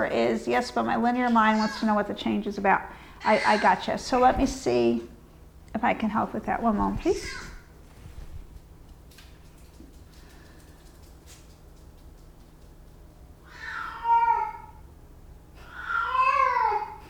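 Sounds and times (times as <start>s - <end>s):
speech: 0.0s - 5.1s, 5.7s - 7.5s
low steady hum: 0.0s - 17.0s
faint clicks and rustles: 4.0s - 13.3s
pet cat meowing: 13.4s - 14.8s, 15.6s - 16.9s.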